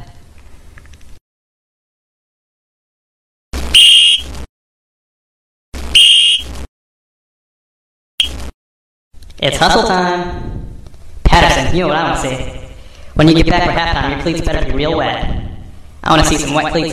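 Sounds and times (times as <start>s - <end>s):
shrill whistle blasts blown as a signal to hustle: 3.7s - 4.3s, 5.9s - 6.5s
speech: 9.4s - 10.4s, 11.4s - 12.6s, 13.2s - 15.4s, 16.0s - 16.9s.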